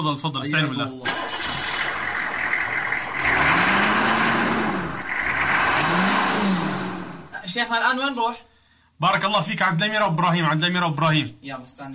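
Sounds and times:
speech: 0.0s - 1.3s, 7.6s - 11.9s
car engine idling and revving: 1.0s - 7.4s.

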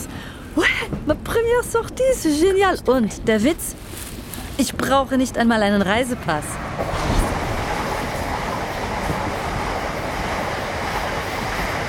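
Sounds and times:
moving train passing another train going in the opposite direction: 0.0s - 11.8s
speech: 1.1s - 3.8s, 4.6s - 7.2s.

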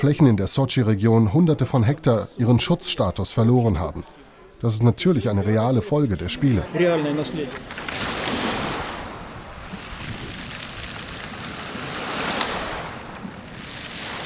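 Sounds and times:
speech: 0.0s - 8.1s
Black Sea waves washing onto a pebble beach near Sochi: 7.2s - 14.2s
wind noise: 7.6s - 14.2s.

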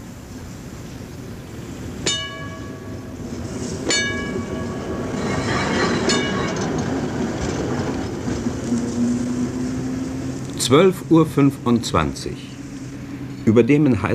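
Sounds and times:
city tram railcar rolling slowly out of its depot: 0.0s - 14.1s
thin whining tone: 1.1s - 13.5s
high metallic squeals: 2.1s - 8.0s
speech: 10.7s - 12.5s, 13.5s - 14.1s.

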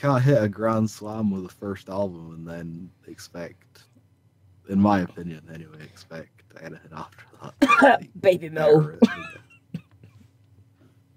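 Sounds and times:
speech: 0.0s - 3.9s, 4.7s - 9.4s
harsh cough: 7.6s - 8.0s.

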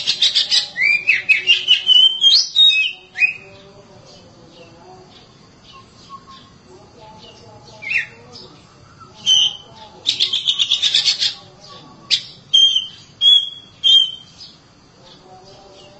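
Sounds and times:
Oriental magpie-robin singing sweet whistled notes: 0.0s - 3.5s, 5.6s - 6.6s, 7.8s - 11.4s, 12.1s - 14.6s.

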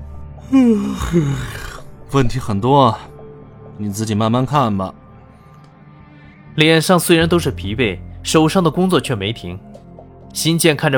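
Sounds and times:
man yawning in a dramatized scene: 0.4s - 1.9s
speech: 0.5s - 3.1s, 3.8s - 5.0s, 6.6s - 9.7s, 10.3s - 10.9s.

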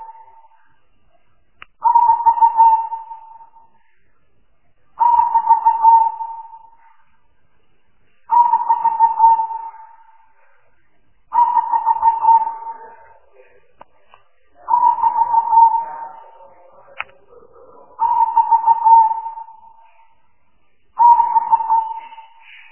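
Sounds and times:
spotted dove throaty grainy coo: 0.0s - 0.5s, 1.8s - 3.6s, 5.0s - 6.8s, 8.3s - 10.2s, 11.3s - 13.4s, 14.6s - 20.0s, 21.0s - 22.6s.

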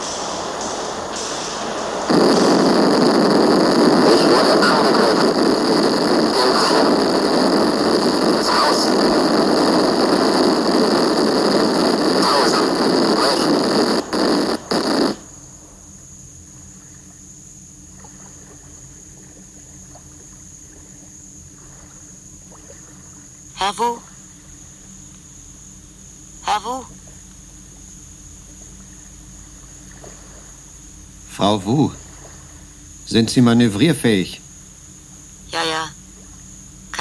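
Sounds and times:
boat drifting in rough sea with high foamy waves: 0.0s - 15.2s
faint low hum: 0.0s - 36.9s
speech: 31.6s - 32.0s, 33.2s - 34.4s.

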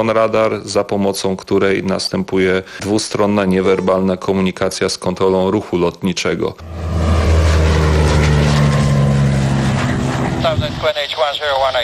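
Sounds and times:
speech: 0.0s - 7.1s, 10.8s - 11.8s
drone flying overhead with a buzzing motor hum: 6.6s - 10.9s.

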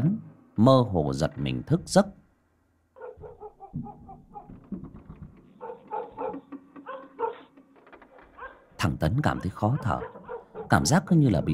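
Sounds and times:
speech: 0.6s - 2.2s, 3.7s - 4.0s, 8.8s - 11.5s
dogs barking in a village at night: 3.0s - 4.7s, 5.4s - 11.1s.

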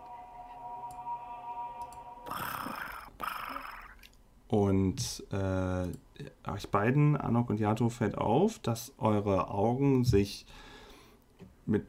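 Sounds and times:
human voice imitating a cat's purr as a sound effect for a cat spell: 2.2s - 4.1s
speech: 4.5s - 10.7s, 11.7s - 11.8s.

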